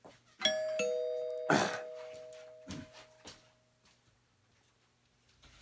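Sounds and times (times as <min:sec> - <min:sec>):
doorbell chiming: 0:00.4 - 0:03.5.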